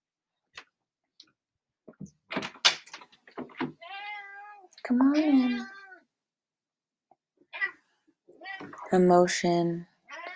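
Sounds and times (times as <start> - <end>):
male cat meowing plaintively: 3.7 - 6.1, 7.4 - 7.8, 8.4 - 8.9, 10.1 - 10.3
speech: 4.9 - 5.7, 8.9 - 9.9.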